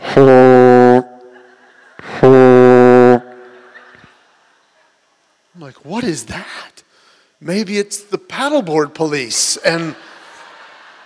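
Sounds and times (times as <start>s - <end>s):
ship's horn blasts from a ship on the water: 0.0s - 1.2s, 2.2s - 3.4s
speech: 0.2s - 0.5s, 5.7s - 6.8s, 7.4s - 10.1s
laughter: 1.3s - 2.2s, 3.3s - 4.8s, 9.6s - 11.0s.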